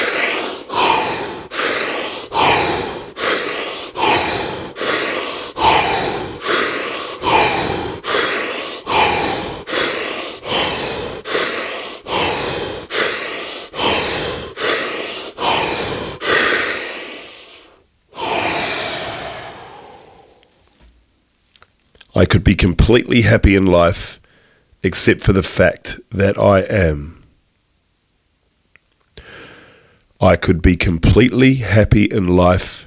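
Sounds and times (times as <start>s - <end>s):
deep breathing in a guided breath exercise: 0.0s - 21.0s, 24.2s - 24.7s, 29.2s - 30.1s
speech: 22.2s - 24.2s, 24.8s - 27.2s, 30.2s - 32.8s.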